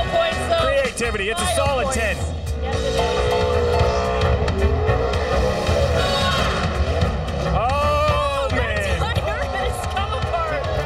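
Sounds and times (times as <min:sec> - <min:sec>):
indistinct voices: 0:00.0 - 0:10.8
speech: 0:01.0 - 0:03.4
car engine revving hard during a burnout: 0:02.4 - 0:10.8
constant roar of spinning car tires during a burnout: 0:02.7 - 0:08.0.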